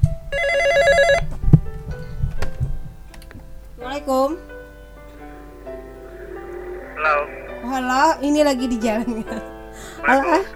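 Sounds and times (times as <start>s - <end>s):
telephone ringing with warbling electronic tones for an incoming call: 0.3s - 1.2s
speech: 4.0s - 4.5s, 7.0s - 10.5s.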